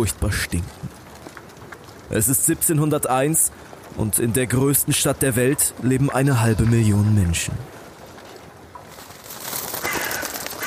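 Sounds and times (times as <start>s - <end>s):
speech: 0.0s - 1.0s, 2.1s - 7.8s
hissing outdoor background: 0.0s - 10.6s
ravens cawing harshly: 9.6s - 10.6s.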